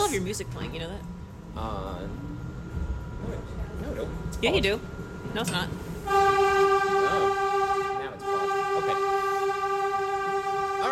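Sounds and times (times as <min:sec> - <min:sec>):
subway car in motion rumbling and rattling: 0:00.0 - 0:10.9
speech: 0:00.1 - 0:06.7
brief tonal whine: 0:06.0 - 0:10.9.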